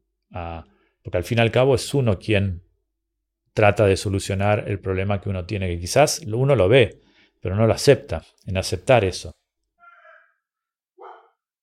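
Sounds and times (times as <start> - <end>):
speech: 0.3 - 2.6, 3.6 - 9.4
female pet dog barking: 9.8 - 10.4, 11.0 - 11.5.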